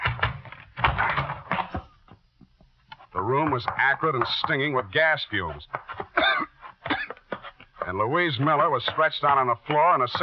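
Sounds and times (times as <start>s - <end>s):
wooden door forced open with a shoulder: 0.0s - 1.7s
speech: 3.2s - 5.9s, 7.9s - 10.2s.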